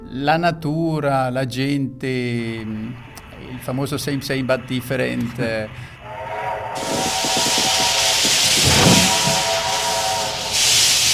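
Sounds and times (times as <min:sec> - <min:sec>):
speech: 0:00.1 - 0:06.0
steam train arriving and hissing: 0:02.9 - 0:11.1
low sustained whistle-like tone: 0:03.3 - 0:11.1.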